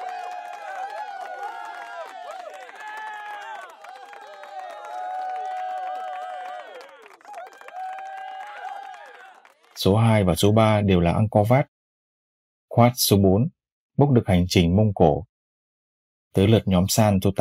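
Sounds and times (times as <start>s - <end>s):
excited group of voices cheering and shouting: 0.0s - 9.8s
people clapping: 0.0s - 10.0s
speech: 9.8s - 11.7s, 12.8s - 15.3s, 16.4s - 17.3s.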